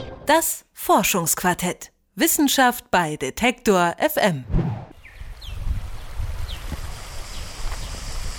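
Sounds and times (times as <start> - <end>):
speech: 0.3 - 4.6
bird chirps: 5.0 - 5.7
high insect drone: 6.7 - 8.3.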